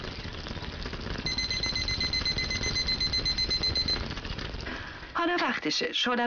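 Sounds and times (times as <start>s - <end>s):
constant low rumble: 0.0s - 5.6s
kitchen timer rapid high-pitched electronic beeping: 1.2s - 4.2s
speech: 5.2s - 6.2s.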